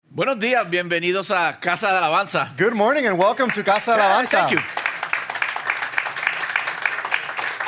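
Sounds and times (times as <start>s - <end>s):
speech: 0.2s - 4.8s
church congregation applauding: 3.4s - 7.6s.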